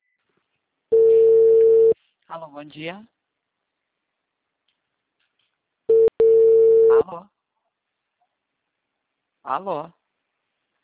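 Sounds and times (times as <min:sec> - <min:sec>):
telephone line tone during an unanswered call: 0:00.9 - 0:02.0, 0:05.9 - 0:07.0
speech: 0:02.4 - 0:03.2, 0:07.0 - 0:07.3, 0:09.4 - 0:10.0.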